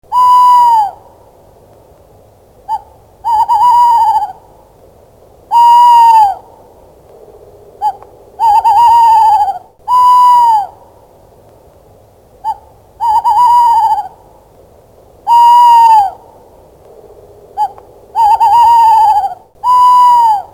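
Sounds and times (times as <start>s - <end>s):
tawny owl: 0.1s - 1.2s, 2.6s - 4.6s, 5.5s - 6.8s, 7.6s - 10.9s, 12.4s - 14.3s, 15.2s - 16.5s, 17.5s - 20.5s.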